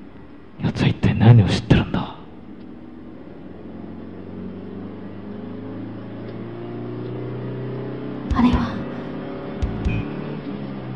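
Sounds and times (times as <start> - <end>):
speech: 0.8 - 1.8
car engine humming as the vehicle moves along: 2.3 - 10.9.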